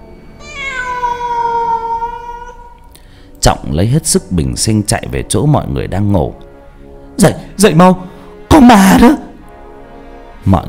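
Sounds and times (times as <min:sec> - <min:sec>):
cat-like yowl sound effect for a monstrous newborn: 0:00.4 - 0:02.8
speech: 0:03.4 - 0:06.5, 0:07.2 - 0:09.3, 0:10.4 - 0:10.6.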